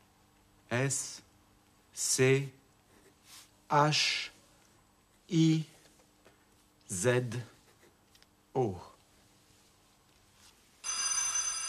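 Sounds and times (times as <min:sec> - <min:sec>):
speech: 0:00.8 - 0:01.3, 0:02.0 - 0:02.6, 0:03.7 - 0:04.3, 0:05.3 - 0:05.7, 0:06.9 - 0:07.5, 0:08.6 - 0:08.9
electric telephone bell ringing: 0:10.8 - 0:11.6.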